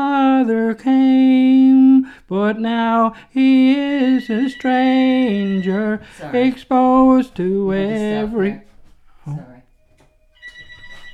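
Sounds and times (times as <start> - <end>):
speech: 0.0 - 1.6, 2.3 - 8.7, 9.3 - 9.5
telephone ringing with electronic tones: 3.8 - 7.3, 9.7 - 11.1.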